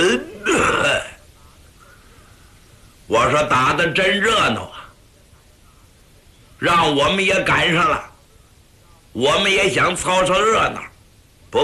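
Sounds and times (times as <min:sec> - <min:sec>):
voice imitating an old man's cough: 0:00.0 - 0:01.1
speech: 0:03.2 - 0:04.8, 0:06.6 - 0:08.1, 0:09.2 - 0:10.9.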